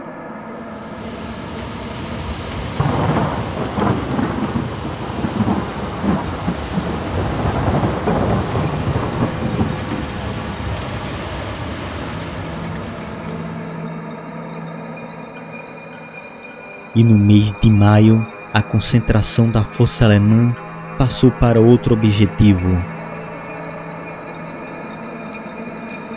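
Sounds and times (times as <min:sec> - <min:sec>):
heavy steady rain hissing in a thunderstorm: 0:00.6 - 0:13.8
deep thunder rolling and rumbling: 0:00.7 - 0:13.8
speech: 0:17.0 - 0:22.9.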